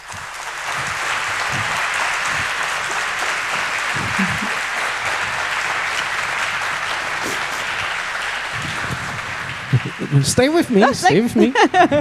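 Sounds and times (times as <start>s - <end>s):
audience applause: 0.0s - 12.0s
laughter: 0.2s - 12.0s
speech: 10.1s - 12.0s.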